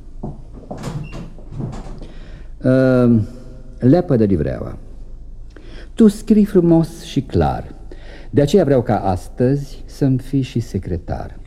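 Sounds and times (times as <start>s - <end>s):
door swinging shut with a creaking squeal: 0.6s - 2.1s
speech: 2.6s - 4.9s, 6.0s - 11.4s.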